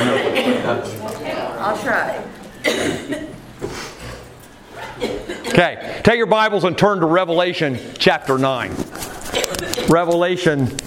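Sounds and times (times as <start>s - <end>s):
speech: 0.7s - 3.8s, 5.6s - 8.9s, 9.8s - 10.8s
audience coughing on request: 2.6s - 4.2s, 4.8s - 5.9s, 9.2s - 10.0s.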